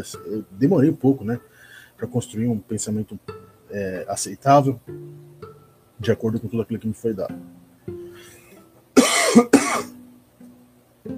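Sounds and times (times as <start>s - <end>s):
speech: 0.0s - 5.4s, 6.0s - 7.6s, 9.3s - 9.9s
harsh coughs: 9.0s - 10.0s.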